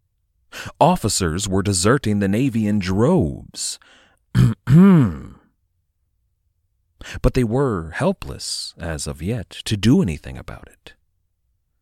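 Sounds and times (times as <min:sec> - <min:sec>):
speech: 0:00.8 - 0:05.3, 0:07.0 - 0:11.0
person clearing throat: 0:04.3 - 0:05.5.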